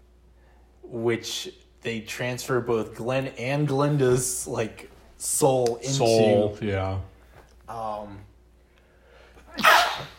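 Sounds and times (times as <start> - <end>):
speech: 0.9 - 7.1, 7.7 - 8.3
person sneezing: 9.4 - 10.1.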